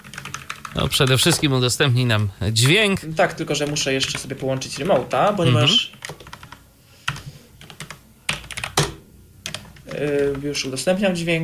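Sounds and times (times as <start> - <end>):
keys being pressed on a computer keyboard: 0.0 - 1.5, 3.5 - 5.2, 5.9 - 10.4
speech: 0.8 - 6.1, 10.0 - 11.4.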